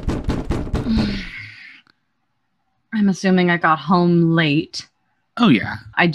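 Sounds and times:
firm knocking on a door: 0.0 - 1.3
speech: 0.9 - 1.3, 3.0 - 6.1.

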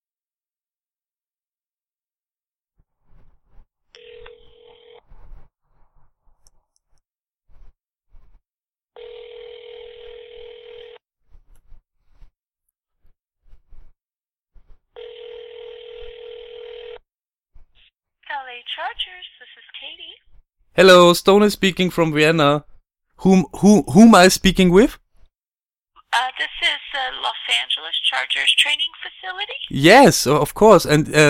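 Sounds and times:
outgoing telephone call ringback tone: 4.0 - 5.1, 9.0 - 11.0, 15.0 - 17.0
speech: 20.8 - 25.0, 26.1 - 31.2.

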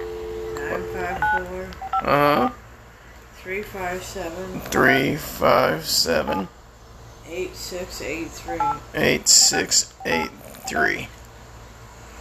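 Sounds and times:
telephone keypad dialing tones: 0.0 - 2.0, 8.5 - 8.8
speech: 1.1 - 2.6, 3.4 - 6.6, 7.3 - 11.2.

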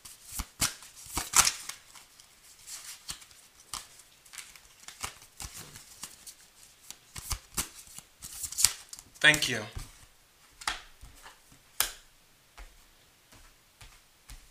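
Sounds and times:
tarot cards being shuffled by hand: 0.0 - 10.0
speech: 9.2 - 9.8.

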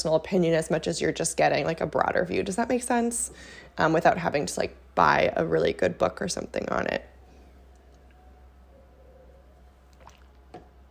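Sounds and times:
speech: 0.0 - 7.1
steady low hum: 3.3 - 10.8
quiet sipping of water: 9.9 - 10.5.

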